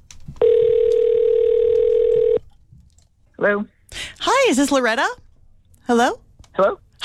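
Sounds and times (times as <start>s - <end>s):
faint noise: 0.0s - 7.0s
electronic telephone ringback tone: 0.4s - 2.4s
speech: 3.4s - 3.8s, 4.4s - 5.2s, 5.9s - 7.0s.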